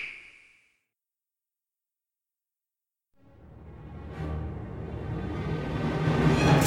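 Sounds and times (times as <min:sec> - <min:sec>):
canyon music intro: 0:03.2 - 0:06.6.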